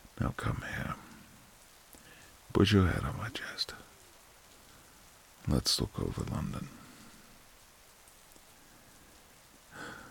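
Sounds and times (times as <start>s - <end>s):
rain starting to fall: 0.0s - 10.1s
speech: 0.2s - 1.0s, 2.6s - 3.9s, 5.5s - 6.8s.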